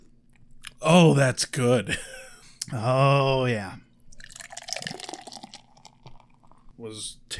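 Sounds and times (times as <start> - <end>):
speech: 0.8 - 3.8, 6.8 - 7.3
beer poured from a can into a glass: 4.1 - 6.8
fizzy bubbling hiss of poured beer: 4.1 - 6.8.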